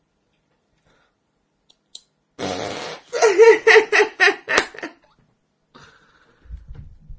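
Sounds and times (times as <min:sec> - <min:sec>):
buzzy fart noise made with a hand: 0:02.4 - 0:03.2
girls laughing in rhythmic bursts: 0:03.1 - 0:05.0.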